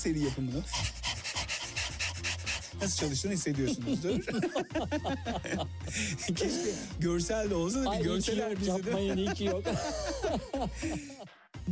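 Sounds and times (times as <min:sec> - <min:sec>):
speech: 0:00.0 - 0:01.0, 0:02.7 - 0:11.7
person imitating dog panting as a breathing exercise: 0:00.2 - 0:03.2, 0:04.9 - 0:07.0, 0:09.5 - 0:11.3
laughter: 0:01.9 - 0:11.3.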